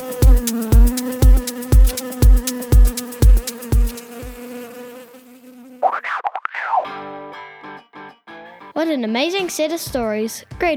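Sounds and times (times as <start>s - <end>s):
regular thumping beat: 0.0s - 4.4s, 9.9s - 10.7s
bees buzzing: 0.0s - 6.2s
speech: 8.9s - 10.7s.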